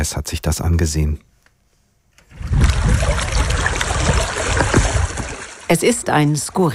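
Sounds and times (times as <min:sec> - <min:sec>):
speech: 0:00.0 - 0:01.3, 0:05.7 - 0:06.7
water lapping at reservoir shore: 0:02.3 - 0:06.7.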